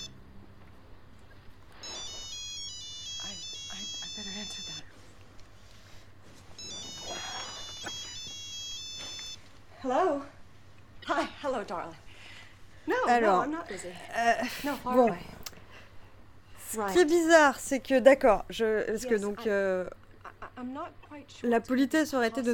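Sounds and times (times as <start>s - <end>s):
shrill warbling electronic phone ringtone: 1.8s - 4.9s, 6.6s - 9.5s
speech: 9.8s - 10.4s, 11.1s - 12.0s, 12.8s - 15.3s, 16.7s - 20.0s, 20.6s - 22.5s.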